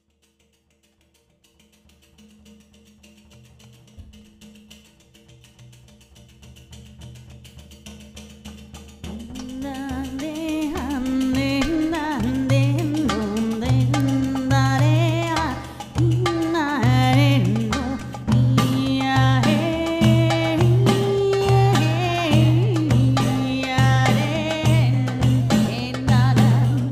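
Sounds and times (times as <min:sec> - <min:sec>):
person joik singing: 0:09.1 - 0:26.9.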